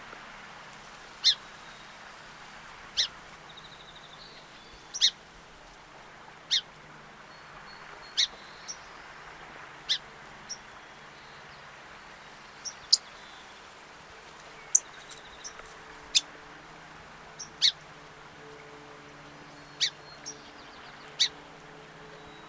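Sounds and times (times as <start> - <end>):
song sparrow Melospiza melodia: 3.0 - 5.2, 6.5 - 16.3, 18.4 - 22.4.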